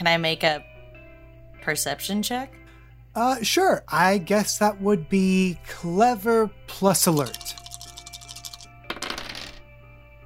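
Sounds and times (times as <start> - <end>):
speech: 0.0 - 0.7, 1.6 - 2.6, 3.2 - 7.6
three dice rolling on a table: 7.1 - 9.6.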